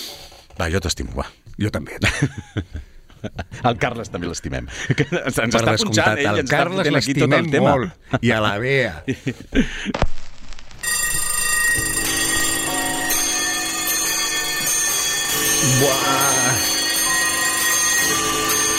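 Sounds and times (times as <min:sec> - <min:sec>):
speech: 0:00.6 - 0:10.1
laughter: 0:01.9 - 0:05.5, 0:09.1 - 0:10.0
many clocks ticking: 0:10.9 - 0:18.7.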